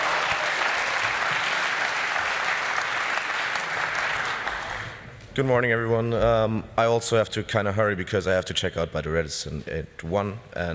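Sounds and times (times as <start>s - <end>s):
audience applause: 0.0s - 5.0s
speech: 5.4s - 10.7s.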